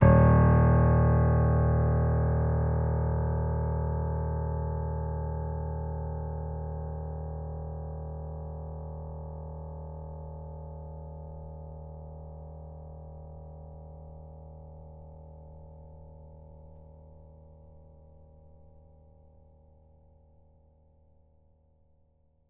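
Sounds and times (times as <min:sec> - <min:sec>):
piano note D sharp 3: 0:00.0 - 0:10.3.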